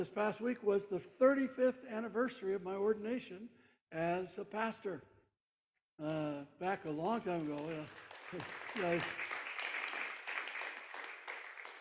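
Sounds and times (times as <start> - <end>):
speech: 0.0 - 5.1, 6.0 - 9.3
audience applauding: 7.2 - 11.7.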